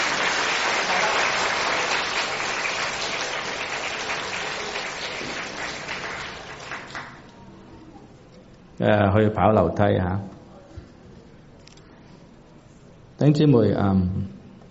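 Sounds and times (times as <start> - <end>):
audience applause: 0.0 - 7.3
speech: 8.8 - 10.4, 13.2 - 14.4.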